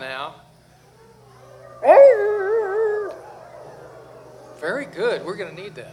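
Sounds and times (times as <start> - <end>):
faint low hum: 0.0 - 5.9
audience member imitating a bluetick hound dog howling: 1.8 - 5.4
speech: 4.9 - 5.9.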